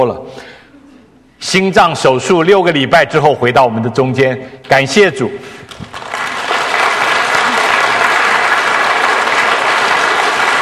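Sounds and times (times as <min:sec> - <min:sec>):
speech: 0:00.0 - 0:00.5, 0:01.4 - 0:06.0
congregation applauding: 0:05.7 - 0:10.6.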